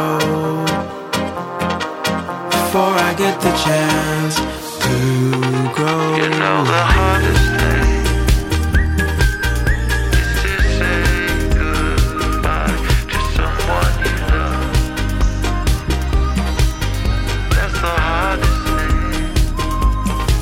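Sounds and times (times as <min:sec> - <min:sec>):
full band arrangement with drums and bass: 0:01.2 - 0:20.4
speech: 0:02.8 - 0:06.9
whistled melody in a song: 0:03.5 - 0:20.4
thumping drums: 0:05.3 - 0:20.4.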